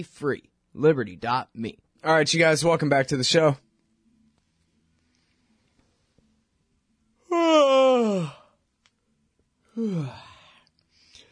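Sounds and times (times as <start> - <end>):
speech: 0.0 - 3.6, 9.8 - 10.3
person yawning while stretching: 7.3 - 8.6, 9.7 - 10.6.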